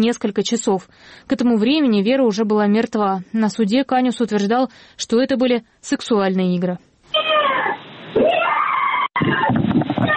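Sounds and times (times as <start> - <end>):
speech: 0.0 - 7.3
woman screaming behind a door: 7.1 - 9.5.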